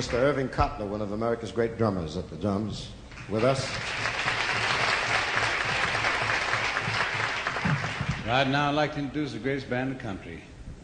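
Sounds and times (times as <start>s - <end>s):
speech: 0.0s - 4.1s, 8.3s - 10.5s
audience applause: 3.2s - 8.5s.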